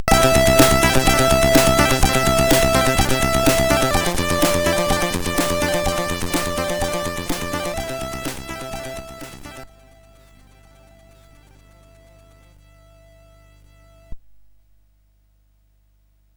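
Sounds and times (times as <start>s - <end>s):
demo drum kit: 0.0s - 9.6s.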